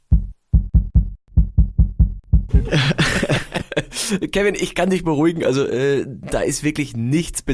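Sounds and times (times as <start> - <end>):
heartbeat picked up by a microphone against the neck: 0.0 - 3.1
laughter: 2.5 - 4.2
speech: 2.7 - 3.1, 4.1 - 7.5.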